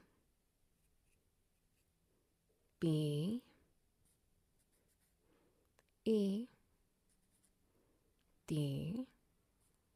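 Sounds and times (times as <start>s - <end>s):
writing strokes traced on a person's right thigh: 0.8s - 2.0s, 4.0s - 5.2s, 7.0s - 7.6s
speech: 2.8s - 3.5s, 6.1s - 6.6s, 8.5s - 9.2s.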